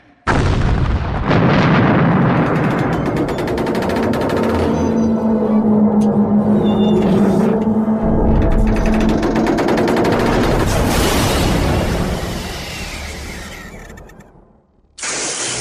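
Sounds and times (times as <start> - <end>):
torpedo exploding on impact: 0.2 - 3.9, 8.0 - 15.3
heavy rumbling roar with rapid rattling crackles: 0.8 - 14.8
sustained low hum: 1.8 - 15.0.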